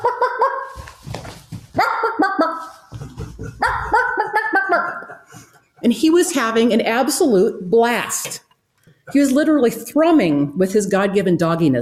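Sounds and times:
golden retriever in a truck barking excitedly: 1.7 - 2.7, 3.6 - 5.2
laughter: 2.3 - 5.9
speech: 5.9 - 8.3, 9.1 - 11.7.

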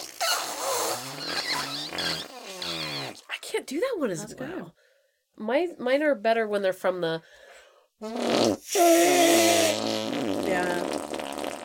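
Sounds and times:
buzzy armpit fart made with a hand: 0.0 - 3.3, 8.0 - 11.6
speech: 3.5 - 4.8, 5.4 - 7.4, 8.0 - 11.2.

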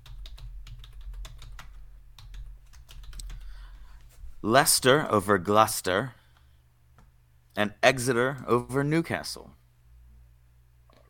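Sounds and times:
rapid typing on a computer keyboard: 0.0 - 3.5
speech: 4.4 - 6.2, 7.6 - 9.6.

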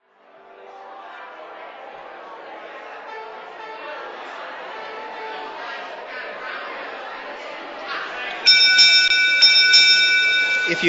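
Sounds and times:
murmur of a chatting crowd: 0.0 - 10.8
hand bell rung to end a gathering: 8.5 - 10.8.

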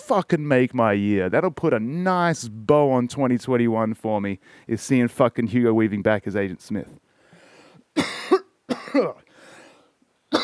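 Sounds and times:
speech: 0.1 - 7.0, 8.9 - 9.2
person coughing with something stuck in the throat: 8.0 - 9.2
throat clearing: 8.0 - 9.2.

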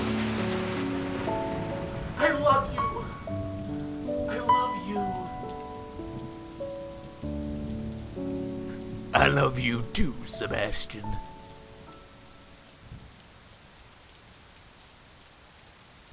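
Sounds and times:
gentle sustained music: 0.0 - 13.3
steady rain pattering on a hard surface: 0.0 - 16.1
speech: 9.2 - 11.3.

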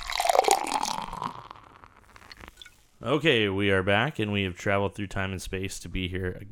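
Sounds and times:
beer pouring into a glass: 0.0 - 2.8
speech: 3.0 - 6.5.

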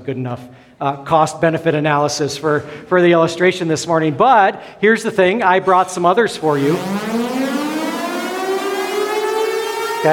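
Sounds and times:
speech: 0.0 - 7.2
air raid siren wailing: 6.2 - 10.1.

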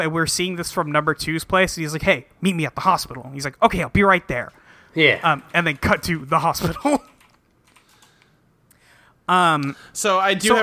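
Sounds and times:
speech: 0.0 - 7.1, 9.3 - 10.6
typing a web search on a computer keyboard: 5.7 - 8.3.

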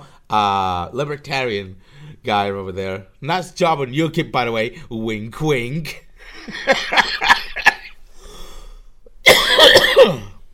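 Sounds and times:
speech: 0.3 - 7.4
laughter: 6.4 - 8.0
person with a throat problem coughing harshly: 9.2 - 10.5.

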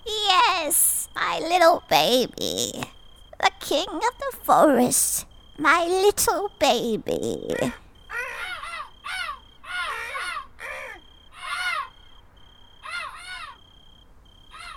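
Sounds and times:
speech: 0.6 - 7.8
bird cawing after landing: 7.7 - 13.8, 14.4 - 14.7.

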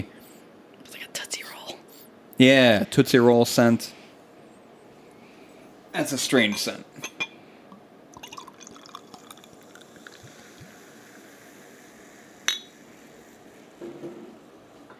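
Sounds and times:
speech: 2.4 - 4.0, 6.0 - 7.2
sharp clink of glass: 6.5 - 7.4, 12.4 - 12.7
dark stout-like beer pouring into a glass: 8.1 - 13.4
liquid trickling and dripping: 8.2 - 10.8.

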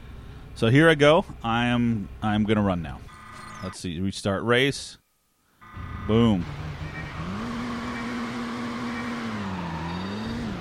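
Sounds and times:
speech: 0.6 - 5.0, 5.8 - 6.6
car engine with slow pickup accelerating in a racing video game: 5.6 - 10.6.

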